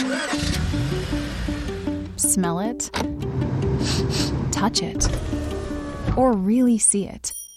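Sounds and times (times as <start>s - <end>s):
car engine starting and revving: 0.0s - 2.2s, 2.9s - 6.4s
speech: 2.2s - 5.5s, 6.1s - 7.4s.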